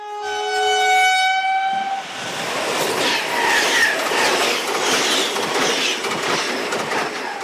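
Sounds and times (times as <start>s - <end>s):
train horn blaring: 0.0s - 2.1s
train rushing past: 1.6s - 7.4s.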